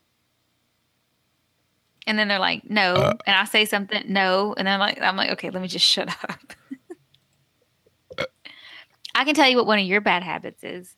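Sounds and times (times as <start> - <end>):
speech: 2.1 - 6.6, 9.2 - 10.9
person burping into the microphone: 2.9 - 3.3, 8.1 - 8.4.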